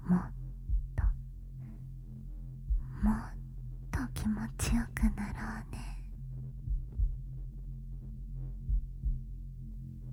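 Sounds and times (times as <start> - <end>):
steady deep hum: 0.0 - 10.1
person's slow heartbeat in double pulses: 0.6 - 1.2, 2.6 - 3.3, 4.0 - 5.3, 6.5 - 9.4.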